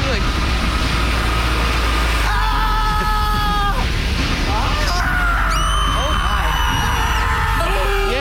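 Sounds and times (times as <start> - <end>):
steady mechanical rumble: 0.0 - 8.1
several voices mimicking screams in a comedy skit: 2.2 - 3.9, 4.5 - 8.1.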